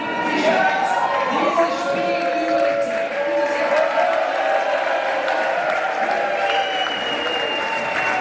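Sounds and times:
crowd of football fans cheering and shouting at public viewing: 0.0s - 8.1s
football fans clapping: 2.1s - 8.1s.

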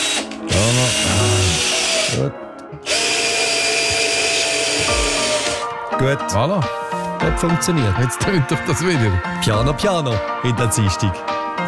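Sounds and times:
power drill driving screws during a piano repair: 0.0s - 5.6s
speech: 2.2s - 2.9s, 6.0s - 11.3s.

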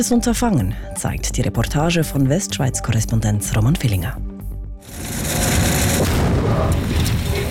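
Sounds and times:
speech: 0.0s - 5.4s
crackling debris from a landmine explosion: 4.9s - 7.4s
landmine explosion beneath a heavy mine-clearing machine: 4.9s - 7.4s.

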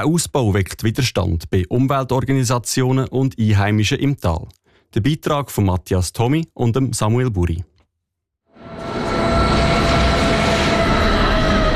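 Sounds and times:
speech: 0.0s - 7.7s
faint sustained tonal whine of a train: 8.5s - 11.7s
rack railway train arriving at station: 8.7s - 11.7s.

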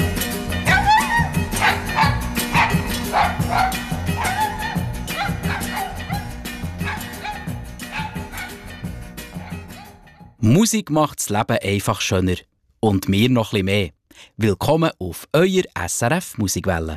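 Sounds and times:
song musical backing: 0.0s - 10.4s
dog barking in quick rhythmic yips: 0.7s - 8.7s, 9.3s - 10.3s
speech: 10.5s - 16.9s.

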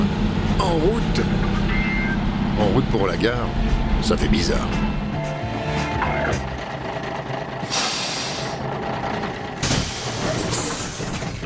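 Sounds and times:
bus engine idling in the rain: 0.0s - 11.4s
speech: 2.6s - 4.9s
bus air brakes hissing: 7.6s - 8.7s, 9.6s - 11.2s.

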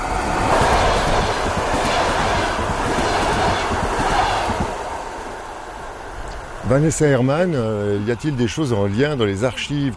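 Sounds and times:
train wheels clattering: 0.0s - 5.3s
train passing through a station: 0.0s - 9.9s
speech: 6.7s - 9.9s.

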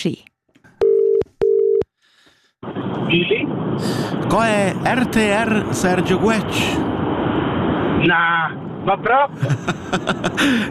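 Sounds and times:
speech: 0.0s - 0.3s, 3.1s - 6.9s, 8.0s - 10.7s
telephone line tone beeps while placing call: 0.8s - 1.8s
laughter: 9.3s - 10.7s.

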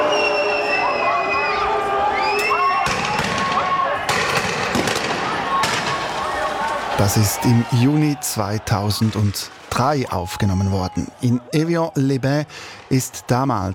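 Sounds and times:
riot crowd shouting during demonstrations: 0.0s - 13.7s
sharp loud bangs of police rubber bullets and tear gas: 2.8s - 6.1s
speech: 7.0s - 13.7s.

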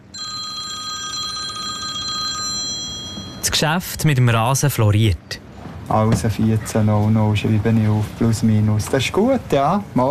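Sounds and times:
roll-turf producer's telephone ringing with a trilling electronic tone: 0.0s - 3.5s
speech: 3.4s - 5.3s, 5.9s - 10.0s.

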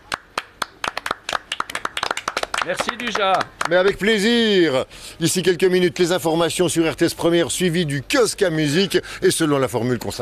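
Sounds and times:
few people clapping in a radio studio: 0.0s - 4.2s
speech: 2.6s - 10.1s.

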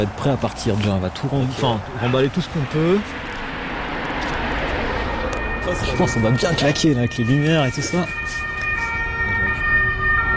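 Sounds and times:
speech: 0.0s - 3.3s, 5.7s - 8.5s
low rumble of road noise: 0.0s - 10.3s
fire engine siren wailing: 3.8s - 10.3s.

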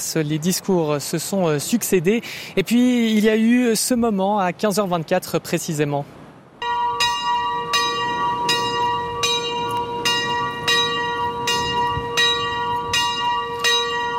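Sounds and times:
speech: 0.0s - 6.2s
church bell tolling in a valley: 6.6s - 14.1s.

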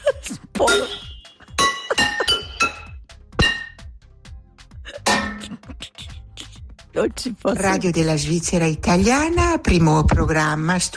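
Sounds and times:
speech: 0.6s - 1.0s, 7.0s - 10.9s
metal pans struck to imitate ringing bells: 0.6s - 3.9s, 5.0s - 5.5s.

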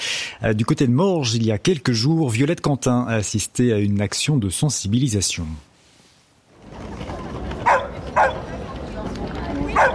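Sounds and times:
speech: 0.4s - 5.7s
murmur of outdoor crowd chatter: 6.5s - 9.9s
dog barking sharply at an outdoor market: 7.6s - 8.4s, 9.7s - 9.9s.

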